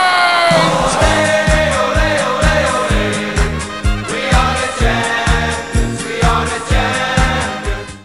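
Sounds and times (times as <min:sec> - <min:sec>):
crowd chanting after a goal: 0:00.1 - 0:07.9.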